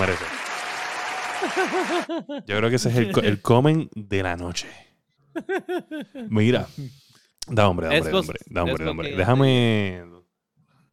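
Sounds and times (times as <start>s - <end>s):
applause: 0.0s - 2.1s
laughter: 1.2s - 3.4s, 5.3s - 6.4s
speech: 1.4s - 4.8s, 5.4s - 10.2s.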